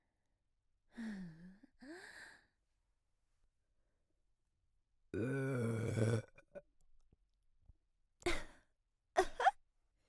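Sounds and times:
loud rumbling burp: 0:05.2 - 0:06.4.

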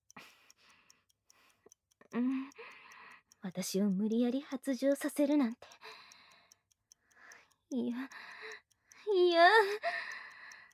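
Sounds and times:
faint steady ticking: 0:00.0 - 0:10.7
speech: 0:03.4 - 0:05.8, 0:07.7 - 0:08.3, 0:09.2 - 0:10.0.

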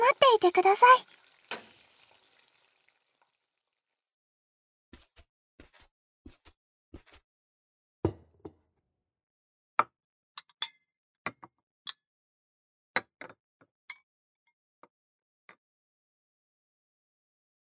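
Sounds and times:
just-fried shrimp sizzling: 0:00.0 - 0:03.2
speech: 0:00.4 - 0:01.2.

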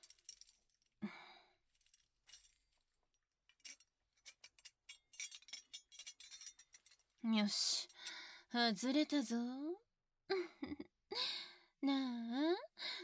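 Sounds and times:
keys jangling and clinking: 0:00.0 - 0:00.7, 0:01.7 - 0:02.8, 0:03.6 - 0:07.2
speech: 0:07.2 - 0:07.8, 0:08.5 - 0:10.9, 0:11.8 - 0:12.6.

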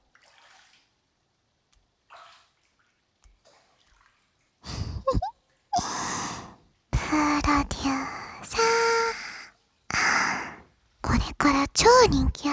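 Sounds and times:
water sloshing in a hot bath as someone sits up: 0:00.0 - 0:12.5
faint breathy sounds: 0:04.6 - 0:12.5
speech: 0:12.0 - 0:12.5.

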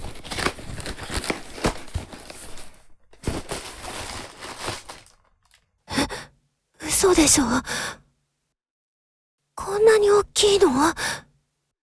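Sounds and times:
packaging rustling, crinkling and tearing during unboxing: 0:00.0 - 0:05.6
speech: 0:07.0 - 0:08.0, 0:10.0 - 0:11.2.

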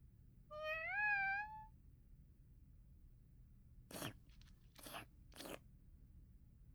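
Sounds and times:
cat meowing: 0:00.5 - 0:01.7
cat eating bonito-flavoured stick-type treat: 0:03.9 - 0:05.6.

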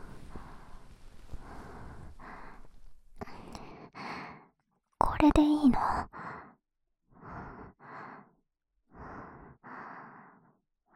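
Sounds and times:
slow heavy breathing against the microphone: 0:00.0 - 0:04.6, 0:06.0 - 0:10.9.

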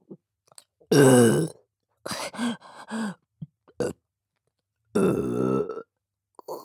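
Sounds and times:
loud person burping: 0:00.9 - 0:01.5, 0:05.0 - 0:05.9, 0:06.4 - 0:06.6.

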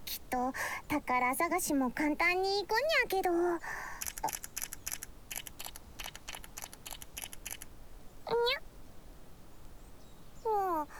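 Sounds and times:
speech: 0:00.3 - 0:04.4
rapid bursts of camera shutter clicks: 0:04.0 - 0:07.7.

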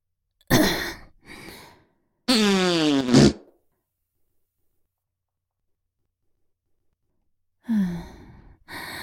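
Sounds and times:
farting: 0:02.3 - 0:03.5.

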